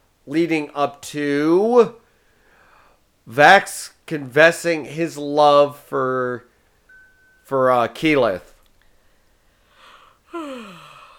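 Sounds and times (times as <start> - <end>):
speech: 0.2 - 2.0, 3.3 - 6.5, 7.5 - 8.5
person yawning: 10.3 - 11.1.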